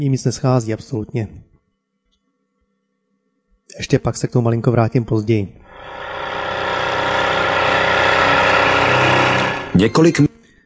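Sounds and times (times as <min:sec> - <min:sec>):
speech: 0:00.0 - 0:01.5, 0:03.8 - 0:05.6, 0:09.8 - 0:10.4
boat motor droning loudly with a constant mechanical hum: 0:05.7 - 0:09.9.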